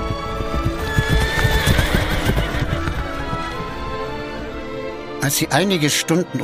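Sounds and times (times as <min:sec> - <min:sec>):
horse hooves clip-clopping: 0:00.0 - 0:05.0
horse whinnying loudly: 0:00.2 - 0:04.2
speech: 0:05.3 - 0:06.4.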